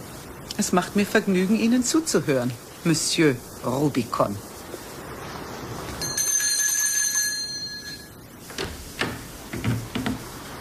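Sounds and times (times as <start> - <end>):
speech: 0.6 - 4.5
hand bell rung to summon a servant: 6.0 - 8.2.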